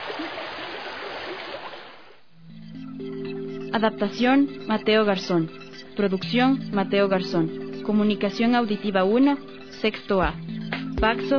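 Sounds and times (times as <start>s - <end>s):
tidewater flowing thickly through flooded streets: 0.0s - 2.0s
low steady tone: 2.3s - 11.3s
speech: 3.7s - 11.3s.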